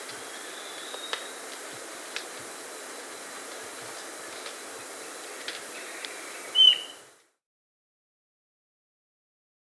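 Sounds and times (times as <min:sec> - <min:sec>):
quiet hiss: 0:00.0 - 0:07.4
Ochre-breasted antpitta whistled note in the Andes, South America: 0:06.5 - 0:07.0.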